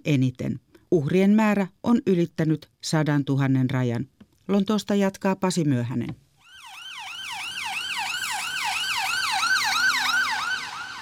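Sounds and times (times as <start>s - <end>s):
speech: 0.0s - 6.2s
ambulance sirens wailing toward Royal Free hospital emergency department in North London England: 6.5s - 11.0s.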